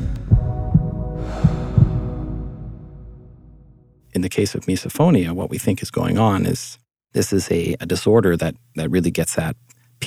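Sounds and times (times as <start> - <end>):
heartbeat thumping low and muffled: 0.0 - 2.7
speech: 4.2 - 10.0.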